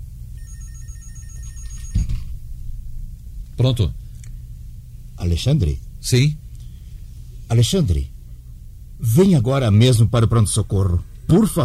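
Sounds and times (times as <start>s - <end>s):
low room hum: 0.0s - 11.6s
office telephone ringing with a thin high electronic tone: 0.4s - 2.3s
speech: 3.6s - 4.0s, 5.2s - 6.4s, 7.5s - 8.1s, 9.0s - 11.6s.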